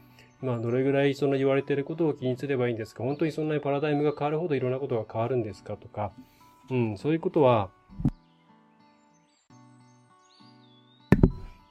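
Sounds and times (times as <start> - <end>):
speech: 0.4 - 8.1
double knock of a chair seat settling: 11.1 - 11.5.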